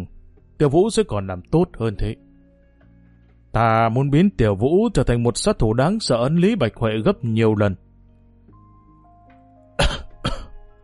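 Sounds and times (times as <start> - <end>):
speech: 0.6 - 2.2, 3.6 - 7.8
harsh coughs: 9.8 - 10.6.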